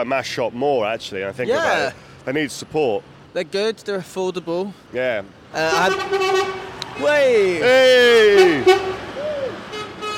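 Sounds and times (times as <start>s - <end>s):
speech: 0.0s - 9.0s
voice imitating a food and drink logistics lorry horn in the street: 7.6s - 9.5s.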